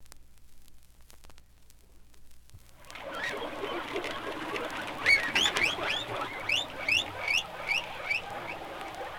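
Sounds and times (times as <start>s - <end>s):
guinea pig squeaks: 2.9s - 9.1s.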